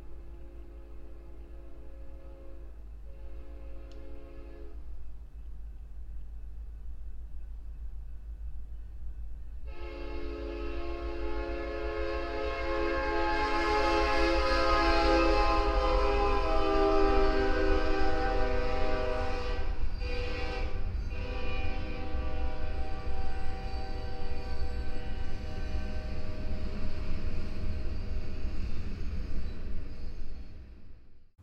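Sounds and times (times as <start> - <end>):
long sustained train horn blaring: 0.0 - 5.0, 9.6 - 28.0
distant train rumbling past: 0.0 - 31.4.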